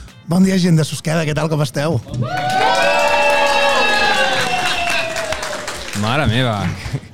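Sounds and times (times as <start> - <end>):
speech: 0.3 - 2.8, 6.0 - 7.0
live audience cheering and shouting at a live show: 2.1 - 6.0.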